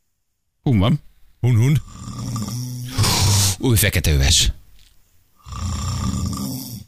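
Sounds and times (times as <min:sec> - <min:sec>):
speech: 0:00.6 - 0:02.1, 0:03.6 - 0:04.6
calm person snoring: 0:01.8 - 0:03.6, 0:05.4 - 0:06.8.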